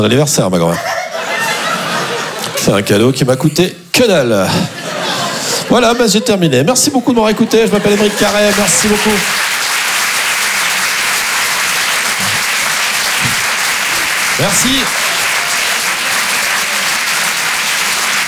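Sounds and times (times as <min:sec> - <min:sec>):
speech: 0:00.0 - 0:01.0, 0:02.6 - 0:04.8, 0:05.7 - 0:09.5, 0:14.4 - 0:15.0
laughter: 0:00.6 - 0:18.2
audience applause: 0:01.2 - 0:02.9, 0:07.2 - 0:18.2.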